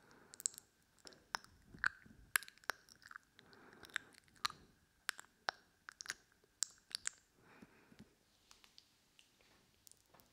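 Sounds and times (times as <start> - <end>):
wet mouth clicks and smacks: 0.3 - 7.3.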